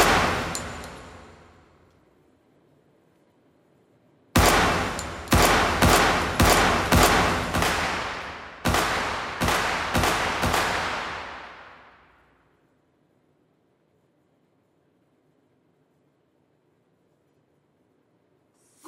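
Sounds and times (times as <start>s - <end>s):
video game gunfire: 0.0s - 1.4s, 4.4s - 12.0s.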